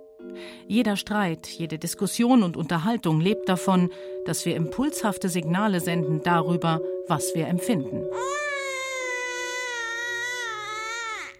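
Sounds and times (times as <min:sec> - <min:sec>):
speech: 0:00.2 - 0:08.5
infant crying: 0:08.1 - 0:11.3.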